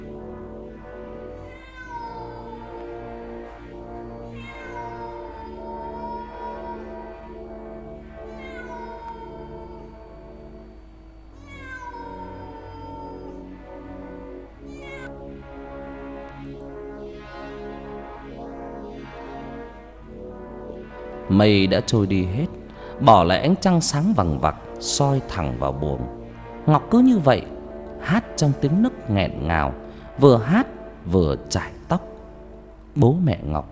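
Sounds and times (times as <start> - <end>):
low droning background: 0.0 - 33.7
cat meowing: 1.4 - 2.7, 4.3 - 7.2, 8.2 - 10.1, 11.4 - 13.5, 14.7 - 15.1
speech: 21.3 - 32.1, 33.0 - 33.7.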